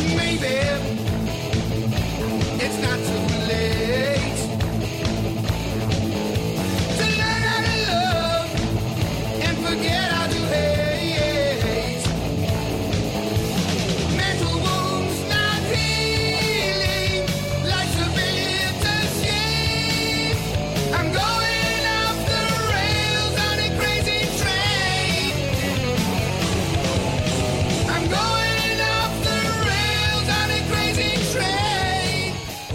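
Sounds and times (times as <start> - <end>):
heavy metal rock song with distorted guitars, drums and sung vocals: 0.0 - 32.7.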